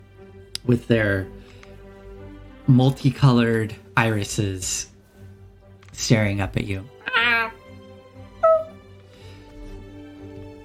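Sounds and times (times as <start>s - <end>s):
speech: 0.6s - 1.5s, 2.7s - 4.9s, 6.0s - 7.0s
cat meowing: 7.0s - 7.6s, 8.4s - 8.8s.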